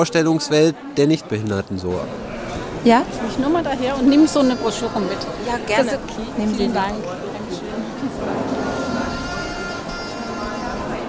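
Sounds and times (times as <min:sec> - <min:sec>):
speech: 0:00.0 - 0:07.3
people talking faintly: 0:00.0 - 0:11.0
electronic toy sheep bleating: 0:08.5 - 0:10.8.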